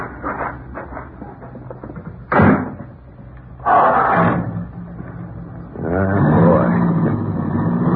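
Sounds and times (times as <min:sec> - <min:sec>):
new car engine turning over and idling: 0:00.0 - 0:07.9
new car doors slamming shut: 0:02.3 - 0:02.9.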